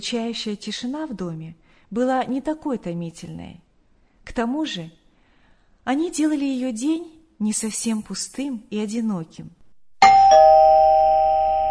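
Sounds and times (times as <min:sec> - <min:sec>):
speech: 0:00.0 - 0:03.6, 0:04.3 - 0:05.0, 0:05.8 - 0:09.6
doorbell ding-dong chime at a house door: 0:10.0 - 0:11.6.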